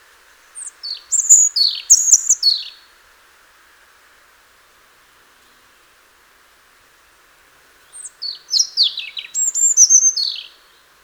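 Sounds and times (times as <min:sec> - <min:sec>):
European robin Erithacus rubecula song: 0:00.6 - 0:02.8, 0:07.9 - 0:10.8.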